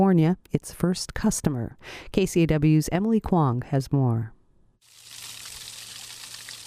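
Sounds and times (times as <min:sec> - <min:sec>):
speech: 0:00.0 - 0:04.4
water rushing out of a temperate rainforest in Alaska: 0:04.9 - 0:06.6.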